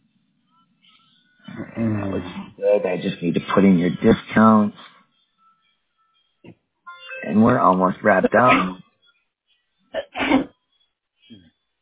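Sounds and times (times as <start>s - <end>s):
murmured voice: 1.4s - 4.9s, 7.2s - 8.8s
speech: 1.8s - 4.8s, 7.3s - 8.8s
sneeze: 8.5s - 8.8s, 10.0s - 10.5s.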